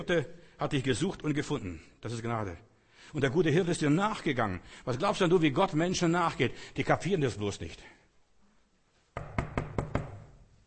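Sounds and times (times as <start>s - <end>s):
speech: 0.0s - 8.0s
knocking on a door: 9.2s - 10.3s.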